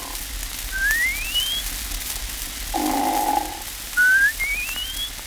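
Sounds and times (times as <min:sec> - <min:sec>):
whistling fart: 0:00.7 - 0:01.7, 0:04.0 - 0:05.1.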